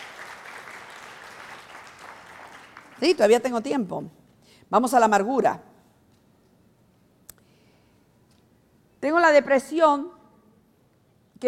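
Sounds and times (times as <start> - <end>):
church congregation applause during a service: 0.0 - 3.4
speech: 3.0 - 5.7, 9.0 - 10.2.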